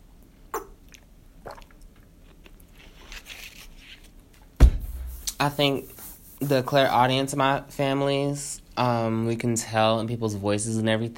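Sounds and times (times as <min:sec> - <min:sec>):
person chewing gum with wet mouth clicks and smacks: 0:00.5 - 0:02.8
speech: 0:05.4 - 0:11.1.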